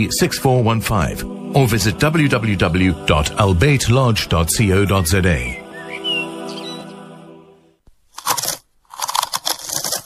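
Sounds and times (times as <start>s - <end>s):
speech: 0.0s - 5.6s
potato chips being crunched while eaten: 8.1s - 10.0s.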